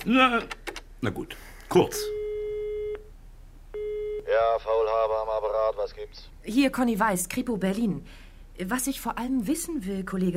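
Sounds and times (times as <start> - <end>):
speech: 0.0 - 2.2, 4.3 - 10.3
electronic telephone ringing tone down the line during a call: 3.8 - 4.3.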